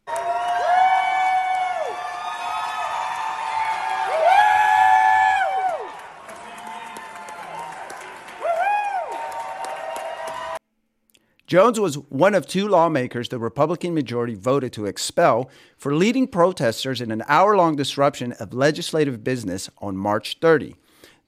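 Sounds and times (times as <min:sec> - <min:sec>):
high whoops and yells from gallery crowd: 0:00.0 - 0:10.6
large crowd in legislative galleries shouting and cheering: 0:00.0 - 0:10.6
speech: 0:11.5 - 0:20.8.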